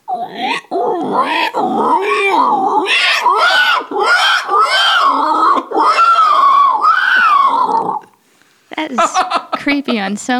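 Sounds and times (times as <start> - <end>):
person vocally imitating a dying pig with squeals and shrieks: 0.0 - 8.1
laughter: 9.0 - 10.1
speech: 9.7 - 10.3.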